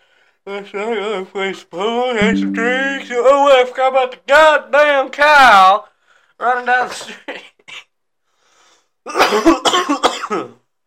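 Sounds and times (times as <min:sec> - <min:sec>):
speech: 0:00.4 - 0:07.4, 0:09.0 - 0:10.6
person coughing: 0:09.6 - 0:10.4.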